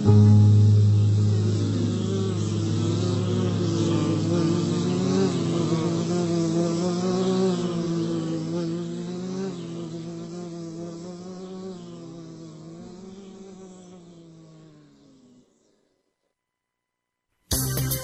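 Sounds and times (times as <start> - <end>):
bees buzzing: 0.0 - 15.8.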